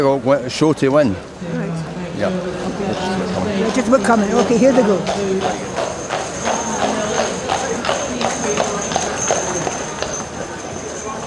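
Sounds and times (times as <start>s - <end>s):
speech: 0.0s - 1.6s, 2.2s - 5.9s
faint voices murmuring: 0.0s - 11.2s
horse hooves clip-clopping on a hard surface, pulling single carts: 2.9s - 11.2s.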